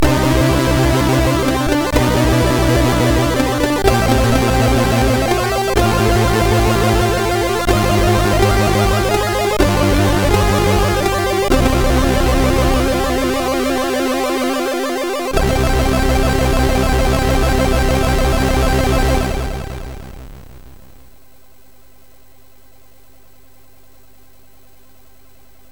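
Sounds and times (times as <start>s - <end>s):
chiptune game over jingle on SID chip: 0.4s - 20.1s.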